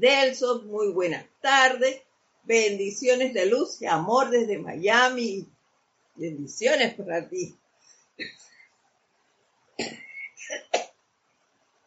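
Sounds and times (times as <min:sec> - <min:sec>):
speech: 0:00.0 - 0:05.6, 0:06.2 - 0:07.6, 0:08.2 - 0:08.5, 0:09.8 - 0:10.9
person coughing: 0:09.8 - 0:10.9.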